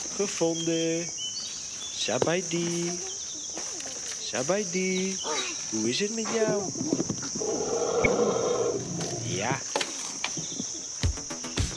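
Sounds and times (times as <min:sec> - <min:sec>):
high hiss of outdoor noise: 0:00.0 - 0:11.7
speech: 0:00.2 - 0:01.2, 0:02.0 - 0:03.1, 0:04.3 - 0:07.8
elephant giving a drawn-out droning call: 0:07.4 - 0:09.6.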